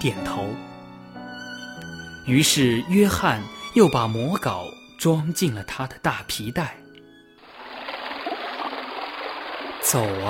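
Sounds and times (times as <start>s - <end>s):
speech: 0.0s - 0.7s, 2.3s - 6.8s, 9.9s - 10.2s
clear spring water flowing in a small stream: 7.4s - 10.2s.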